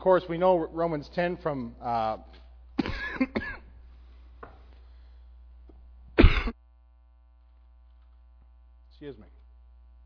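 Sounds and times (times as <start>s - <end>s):
speech: 0.0s - 3.6s, 9.0s - 9.4s
person coughing: 2.8s - 3.8s, 6.2s - 6.6s.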